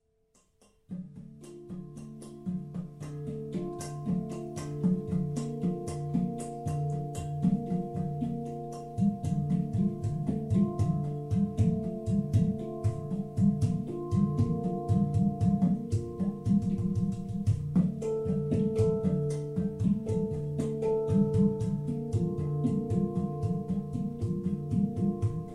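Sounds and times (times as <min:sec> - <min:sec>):
handpan: 0:00.4 - 0:25.5
udu drum: 0:00.6 - 0:25.5.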